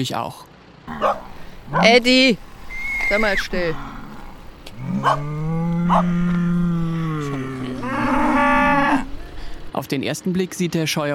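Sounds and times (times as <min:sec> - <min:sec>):
speech: 0:00.0 - 0:04.0, 0:04.8 - 0:06.5, 0:09.8 - 0:11.1
faint outdoor noise on a farm: 0:00.0 - 0:11.1
cow mooing on farm pasture: 0:00.9 - 0:09.7.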